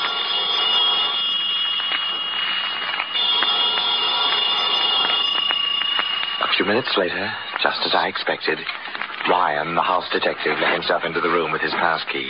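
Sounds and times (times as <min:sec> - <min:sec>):
telephone bell ringing: 0:00.0 - 0:07.8
speech: 0:06.7 - 0:12.2.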